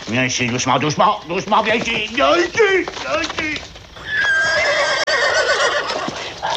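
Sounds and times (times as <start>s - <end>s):
speech: 0.1s - 3.7s
horse neighing with a long quavering whinny: 2.2s - 6.5s.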